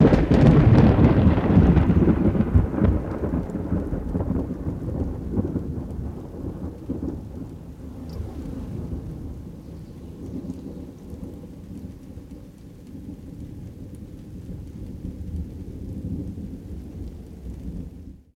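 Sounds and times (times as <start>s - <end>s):
heavy thunder crack: 0.0s - 18.3s.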